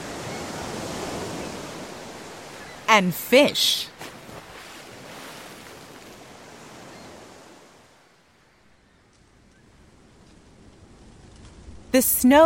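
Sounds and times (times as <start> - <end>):
ocean surf rushing roar: 0.0 - 8.4
speech: 2.9 - 4.0, 11.9 - 12.4.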